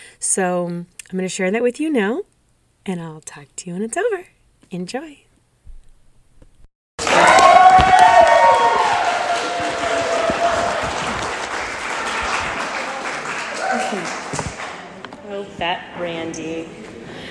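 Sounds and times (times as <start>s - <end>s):
speech: 0.2s - 5.2s, 15.4s - 16.8s
audience cheering: 7.0s - 14.9s
large audience applause: 7.0s - 15.0s.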